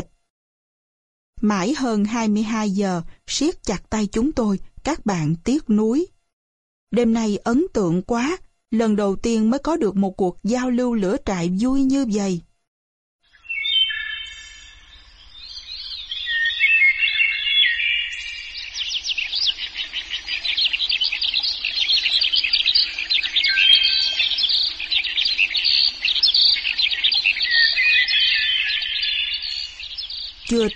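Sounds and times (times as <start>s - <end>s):
speech: 1.4s - 6.2s, 6.9s - 12.5s, 30.6s - 30.7s
hwamei songbird calls and other birdcalls played from a cassette player as a lure in a forest at dawn: 16.0s - 30.7s.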